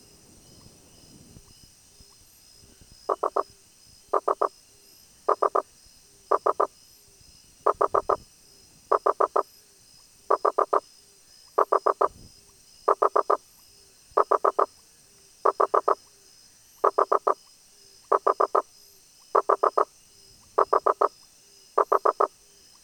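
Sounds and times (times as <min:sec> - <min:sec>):
high background hiss: 0:00.0 - 0:22.8
Rosenberg's gladiator frog Boana rosenbergi calling in short knocking notes: 0:03.1 - 0:03.5, 0:04.1 - 0:04.5, 0:05.3 - 0:05.7, 0:06.3 - 0:06.7, 0:07.6 - 0:08.2, 0:08.9 - 0:09.5, 0:10.3 - 0:10.8, 0:11.5 - 0:12.2, 0:12.9 - 0:13.4, 0:14.2 - 0:14.7, 0:15.4 - 0:16.0, 0:16.8 - 0:17.4, 0:18.1 - 0:18.7, 0:19.3 - 0:19.9, 0:20.6 - 0:21.2, 0:21.8 - 0:22.3.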